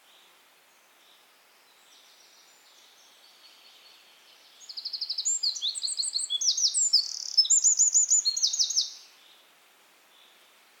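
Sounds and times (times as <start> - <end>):
faint background hiss: 0.0 - 10.7
Eurasian wren Troglodytes troglodytes singing: 4.6 - 9.0.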